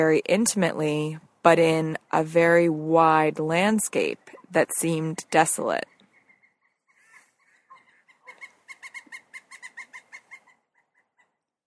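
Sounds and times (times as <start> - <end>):
speech: 0.0 - 5.9
pileated woodpecker ringing calls: 5.8 - 11.6.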